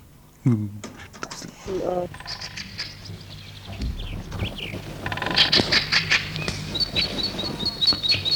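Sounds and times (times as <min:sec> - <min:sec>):
birds singing and chirping in a spring forest: 0:01.6 - 0:08.3
person talking: 0:01.7 - 0:02.1.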